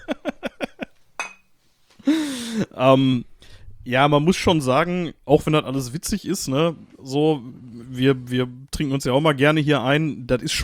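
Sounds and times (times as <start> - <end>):
glasses clinking in a toast: 1.2 - 1.5
speech: 2.6 - 10.6.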